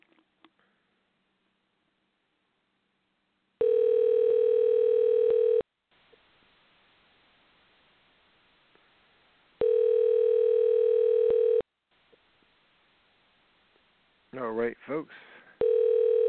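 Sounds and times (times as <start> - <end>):
telephone tones while placing a call: 3.6 - 5.6, 9.6 - 11.6, 15.6 - 16.2.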